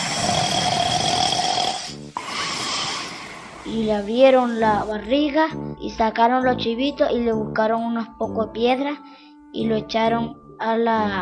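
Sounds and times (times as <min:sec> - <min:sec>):
voice imitating a wolf snoring: 0:00.0 - 0:04.1
speech: 0:03.7 - 0:11.1.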